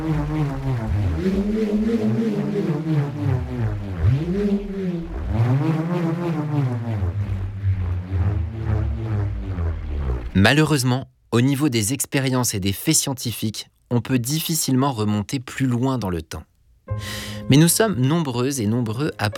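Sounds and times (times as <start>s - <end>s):
speech: 0.0s - 2.1s, 10.4s - 19.3s
bullroarer whirring through the air: 0.0s - 10.4s.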